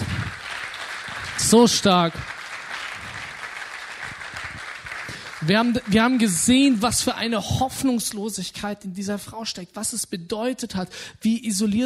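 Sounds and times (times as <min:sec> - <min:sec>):
audience applause: 0:00.0 - 0:07.2
speech: 0:01.4 - 0:02.3, 0:05.5 - 0:11.8.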